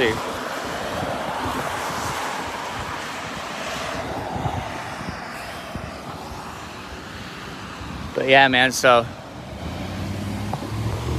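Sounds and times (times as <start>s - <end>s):
speech: 0.0s - 0.3s, 8.2s - 9.2s
steady low rumble of road noise: 0.0s - 11.1s.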